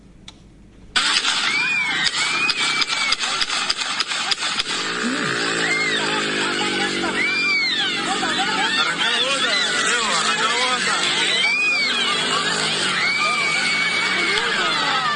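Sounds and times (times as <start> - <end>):
noisy street scene: 0.0 - 15.1
rapid burst of sharp gunshot cracks during a street fight: 1.0 - 7.0
engine revving: 1.0 - 15.1
laughter: 1.0 - 15.1
people shouting: 1.0 - 15.1.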